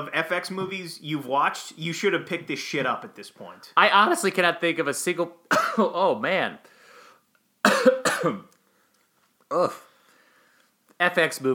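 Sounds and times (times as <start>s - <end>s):
speech: 0.0s - 6.8s, 7.6s - 8.5s, 9.5s - 9.9s, 11.0s - 11.5s
person who has eaten cannabis edibles coughing harshly: 5.5s - 5.9s, 7.6s - 8.5s.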